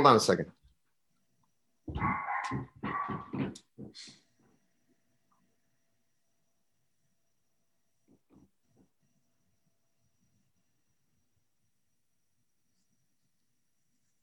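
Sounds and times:
speech: 0.0 - 0.6, 1.9 - 4.2
dog barking: 1.9 - 3.5
faint low dog grunts: 1.9 - 4.0.

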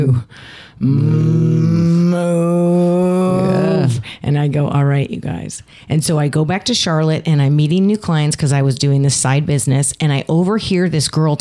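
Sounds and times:
speech: 0.0 - 2.7, 4.2 - 11.3
person imitating a cow mooing: 0.8 - 4.0.

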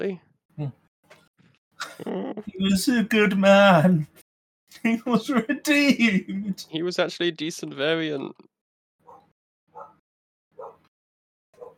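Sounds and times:
speech: 0.0 - 0.8, 2.0 - 8.5
dog barking: 9.0 - 10.0, 10.6 - 10.9, 11.6 - 11.7.

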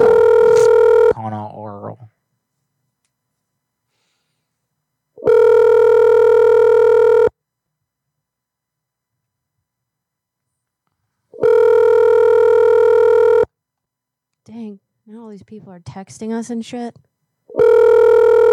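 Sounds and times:
buzzing phone ringback tones: 0.0 - 1.2, 5.2 - 7.3, 11.4 - 13.5, 17.5 - 18.5
speech: 15.4 - 17.7.

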